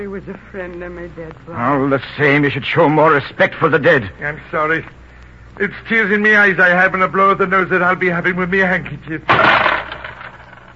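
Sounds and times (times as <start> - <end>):
speech: 0.0 - 5.0, 5.6 - 9.7
coins dropping on a hard floor: 9.3 - 10.7.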